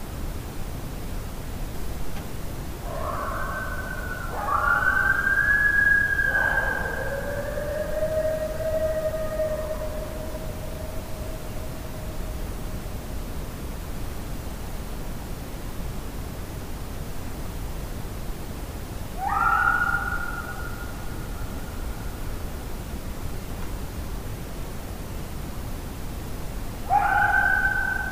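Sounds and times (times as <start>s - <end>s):
background hiss: 0.0s - 28.0s
coyote howl: 2.8s - 12.6s, 19.2s - 21.8s, 26.8s - 28.0s.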